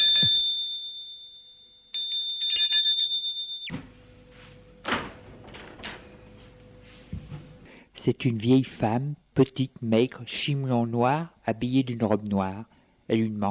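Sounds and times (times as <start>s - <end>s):
electric doorbell ringing in an upscale apartment building: 0.0s - 6.5s
soft thuds: 6.4s - 7.6s
speech: 8.0s - 13.4s.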